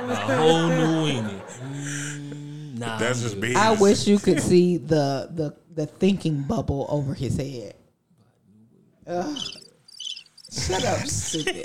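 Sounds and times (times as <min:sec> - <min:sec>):
laughter: 0:00.0 - 0:02.2, 0:10.5 - 0:11.6
speech: 0:00.1 - 0:07.8, 0:09.1 - 0:09.6, 0:10.5 - 0:11.6
cricket chirping: 0:09.3 - 0:11.6.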